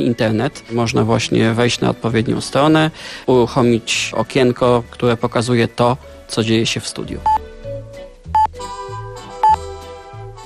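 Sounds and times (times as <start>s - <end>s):
speech: 0.0s - 7.4s
Polish radio hourly time signal pips: 9.4s - 9.6s.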